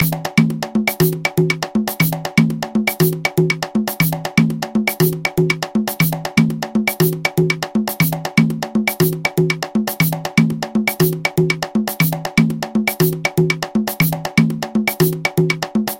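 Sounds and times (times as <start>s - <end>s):
guaguanco music from Havana: 0.0s - 15.9s.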